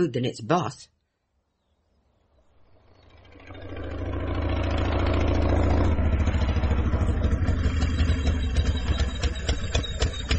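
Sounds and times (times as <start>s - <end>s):
speech: 0.0s - 0.9s
quad bike engine approaching and idling: 2.6s - 10.3s.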